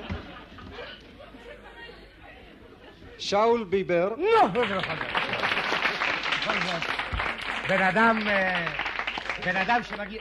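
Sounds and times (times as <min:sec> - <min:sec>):
speech: 0:03.2 - 0:05.4, 0:06.5 - 0:07.0, 0:07.7 - 0:08.8, 0:09.4 - 0:10.2
crowd applauding: 0:04.4 - 0:10.2.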